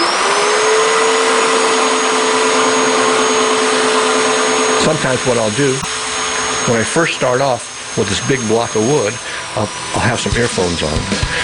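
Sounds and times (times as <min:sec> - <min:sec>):
chainsaw cutting into a hollow block of wood: 0:00.0 - 0:11.4
speech: 0:04.9 - 0:05.9, 0:06.6 - 0:11.4.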